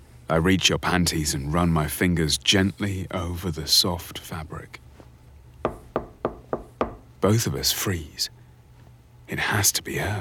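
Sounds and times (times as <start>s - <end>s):
speech: 0.3s - 4.8s, 7.2s - 8.4s, 9.3s - 10.1s
firm knocks on a door: 5.7s - 7.1s.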